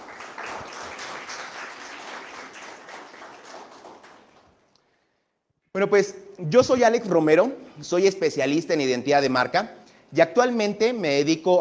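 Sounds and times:
crowd applauding: 0:00.0 - 0:04.6
speech: 0:05.8 - 0:11.6.

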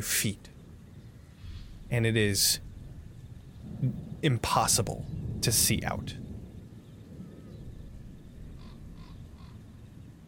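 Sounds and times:
speech: 0:00.0 - 0:00.5, 0:01.9 - 0:02.7, 0:03.7 - 0:06.2
low rumble of wind or ambient noise: 0:00.0 - 0:10.2
crows or ravens cawing: 0:08.5 - 0:09.7.

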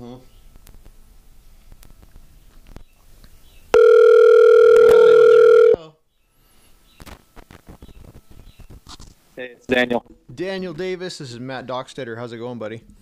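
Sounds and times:
old telephone dial tone: 0:03.8 - 0:05.8
speech: 0:09.4 - 0:12.9.

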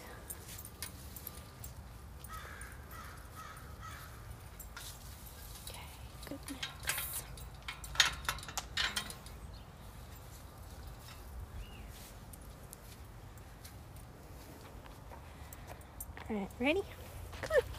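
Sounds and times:
steady outdoor hiss: 0:00.0 - 0:17.7
crow cawing: 0:02.3 - 0:04.2
speech: 0:16.3 - 0:17.0.

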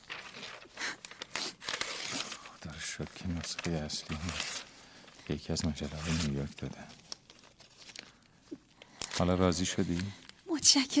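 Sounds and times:
paper being torn up: 0:00.1 - 0:02.5, 0:03.4 - 0:04.7, 0:05.8 - 0:06.6
speech: 0:03.0 - 0:04.6, 0:05.3 - 0:07.0, 0:09.2 - 0:10.9.

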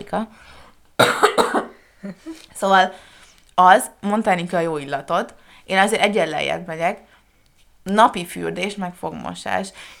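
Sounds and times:
speech: 0:00.1 - 0:01.1, 0:02.0 - 0:07.1, 0:07.8 - 0:09.9
loud cough: 0:01.0 - 0:02.3.

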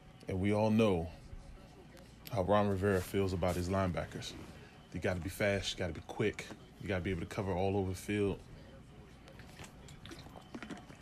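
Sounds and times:
speech: 0:00.3 - 0:01.2, 0:02.3 - 0:08.5
sipping and swallowing water: 0:09.2 - 0:11.0.

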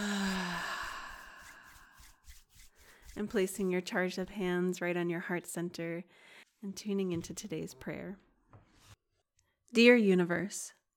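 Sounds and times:
audible exhale out through the mouth during a guided breathing exercise: 0:00.0 - 0:02.1
speech: 0:03.2 - 0:08.3, 0:09.7 - 0:10.8.

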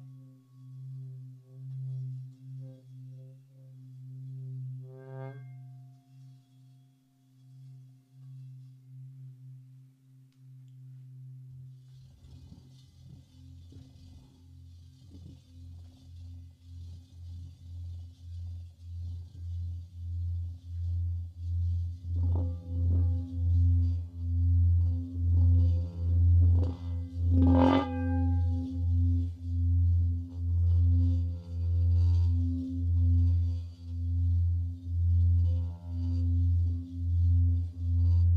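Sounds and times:
Himalayan singing bowl humming drone: 0:00.0 - 0:38.3
bright ringing strike of a Himalayan singing bowl: 0:22.1 - 0:38.3.

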